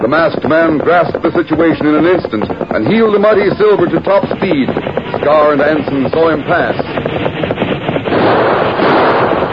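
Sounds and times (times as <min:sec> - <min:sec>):
speech: 0:00.1 - 0:07.0
volley of gunshots fired at a galloping rider beside railway tracks: 0:05.2 - 0:09.4.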